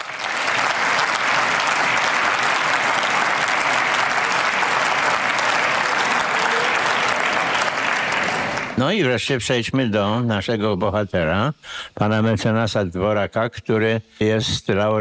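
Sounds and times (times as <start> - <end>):
audience applause at an awards ceremony: 0.0 - 8.8
speech: 8.8 - 14.9.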